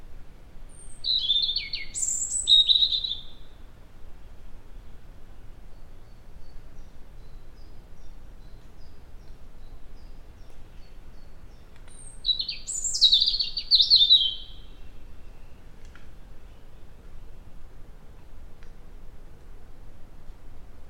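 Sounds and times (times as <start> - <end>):
quiet background hiss: 0.0 - 20.8
European robin Erithacus rubecula singing: 0.7 - 3.6, 5.6 - 17.4.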